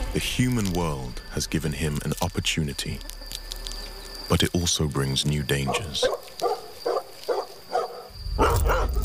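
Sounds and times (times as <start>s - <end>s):
speech: 0.1s - 3.2s, 4.3s - 6.2s
domestic dog barking: 5.7s - 9.0s.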